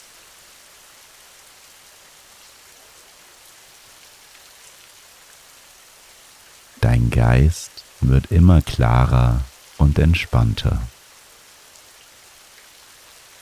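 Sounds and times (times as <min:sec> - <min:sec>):
soft rainfall pattering on a surface: 0:00.0 - 0:13.4
speech: 0:07.0 - 0:11.0.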